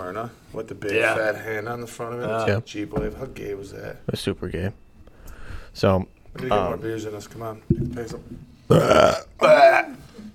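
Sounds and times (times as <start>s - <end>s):
speech: 0.0s - 4.8s, 5.7s - 10.0s
loud burps: 8.7s - 10.0s.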